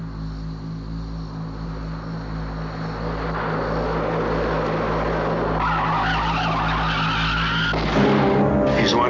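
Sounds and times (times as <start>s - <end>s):
loud steady car engine roar: 1.2s - 9.0s
tires screeching in a long skid: 2.5s - 9.0s.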